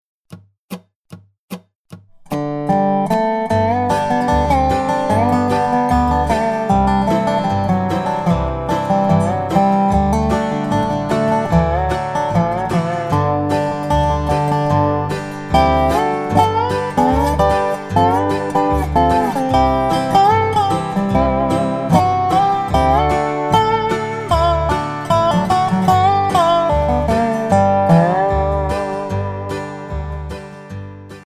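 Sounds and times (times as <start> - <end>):
Dobro playing in the key of G: 2.1 - 31.2
backing track: 2.1 - 31.2.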